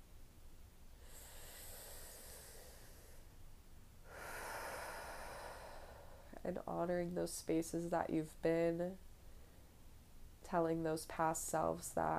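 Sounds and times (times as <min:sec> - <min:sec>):
deep slow breath: 0:01.0 - 0:03.3, 0:04.0 - 0:06.4
speech: 0:06.4 - 0:09.0, 0:10.5 - 0:12.1.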